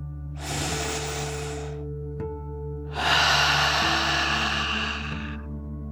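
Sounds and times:
deep inhale through the nose: 0.4 - 1.8, 2.9 - 5.5
long loud exhale through the mouth: 0.4 - 1.8, 2.9 - 5.5.

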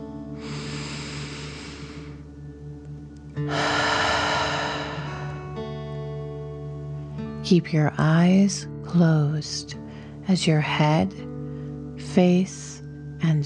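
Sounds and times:
soft sustained musical drone: 0.0 - 13.4
slow deep breathing in and out: 0.3 - 2.5, 3.4 - 5.8
speech: 3.4 - 3.7, 7.5 - 11.3, 12.2 - 13.4.

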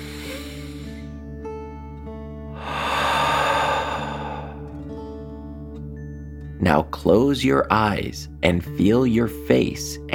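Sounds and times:
slow deep calming breathing in and out: 0.0 - 1.2, 2.5 - 5.0
speech: 6.6 - 10.1.

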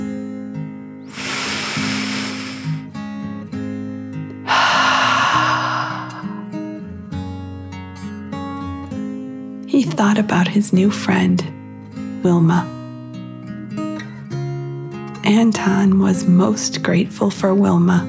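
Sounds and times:
slow deep breath in and out: 1.1 - 2.9, 4.4 - 6.7
speech: 10.0 - 11.6, 12.2 - 12.8, 15.3 - 18.0.

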